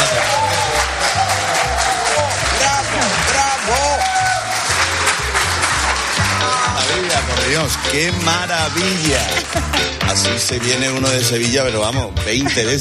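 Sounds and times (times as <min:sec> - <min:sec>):
scattered cheers and shouting voices: 0:00.0 - 0:11.6
large audience applauding: 0:00.0 - 0:11.8
laughter: 0:04.8 - 0:11.0, 0:12.3 - 0:12.7
speech: 0:07.7 - 0:12.7.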